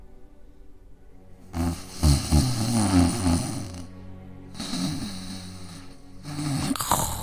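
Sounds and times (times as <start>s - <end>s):
loud rumbling snores of a sleeping wolf: 1.5s - 3.9s, 4.6s - 7.2s.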